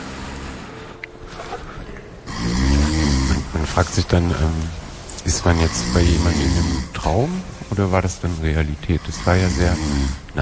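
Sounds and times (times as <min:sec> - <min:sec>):
person snoring: 0:02.2 - 0:04.6, 0:05.2 - 0:07.5, 0:08.8 - 0:10.4
speech: 0:03.7 - 0:10.4.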